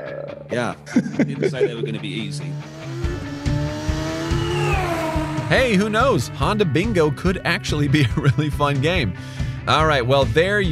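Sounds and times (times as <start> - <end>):
speech: 0.2 - 3.2, 5.5 - 10.6
laughter: 0.8 - 2.5, 7.8 - 8.8
Indy car engine screaming at high revs: 2.4 - 7.4
rapid gear changes from the Indy car gearbox: 2.5 - 7.3.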